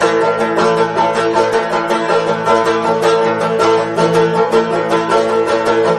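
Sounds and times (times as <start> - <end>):
banjo: 0.0 - 5.9.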